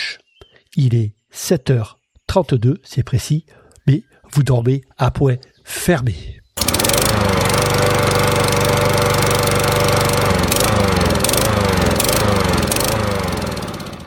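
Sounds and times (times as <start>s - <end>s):
speech: 0.8s - 7.4s
petrol lawn mower engine droning: 6.6s - 14.0s.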